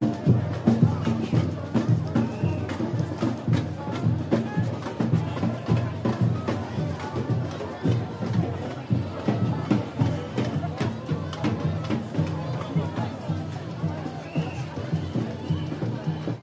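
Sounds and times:
ethnic protest band approaching: 0:00.0 - 0:16.4.

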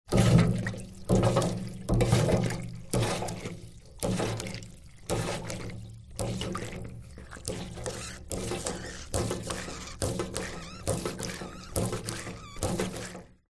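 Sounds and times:
industrial hand pump pumping water into small metal tank: 0:00.1 - 0:13.4.

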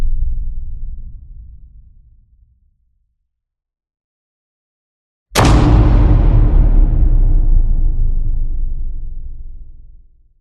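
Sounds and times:
cinematic metal impact hit: 0:05.4 - 0:10.3.

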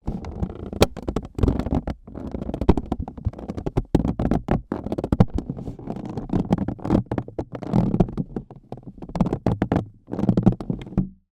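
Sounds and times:
small plastic container creaking under pressure: 0:00.0 - 0:11.2.

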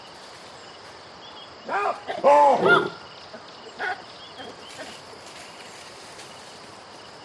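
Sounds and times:
baboon calls: 0:01.7 - 0:05.0.

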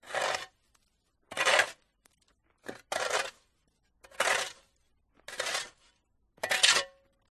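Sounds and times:
shovel clearing snow from path: 0:00.0 - 0:00.6, 0:01.3 - 0:01.9, 0:02.6 - 0:07.0.

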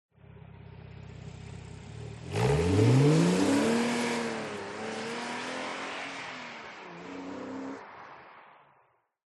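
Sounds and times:
sports car driving away fast: 0:01.1 - 0:08.4.

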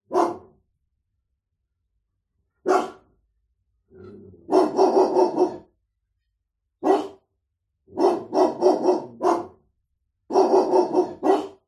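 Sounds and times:
medium-sized dog barking: 0:00.0 - 0:00.6, 0:02.6 - 0:03.1, 0:04.4 - 0:05.7, 0:06.8 - 0:07.3, 0:07.9 - 0:09.7, 0:10.3 - 0:11.6.

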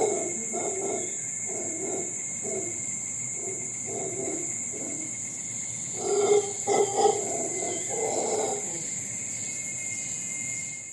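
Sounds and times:
howler monkey grunting and roaring in Costa Rica: 0:00.0 - 0:05.2, 0:06.0 - 0:09.0
insect drone in Costa Rica: 0:00.0 - 0:10.9.

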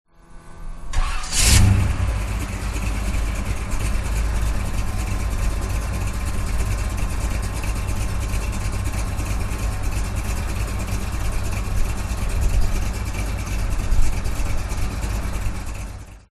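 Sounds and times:
vintage 1957 Chevrolet engine starting heard from exterior: 0:00.2 - 0:16.3.

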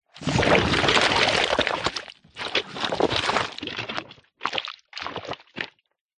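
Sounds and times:
cartoon slime big movement squelch: 0:00.1 - 0:05.8.

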